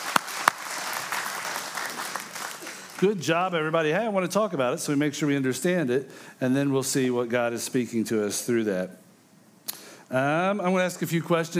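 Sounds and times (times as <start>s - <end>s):
audience applause for actors after a performance: 0.0s - 3.2s
speech: 3.0s - 9.0s, 10.1s - 11.5s.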